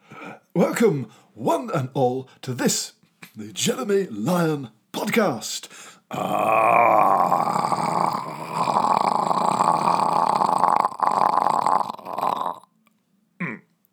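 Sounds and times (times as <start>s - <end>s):
speech: 0.6s - 8.3s
lion roaring: 6.1s - 12.6s.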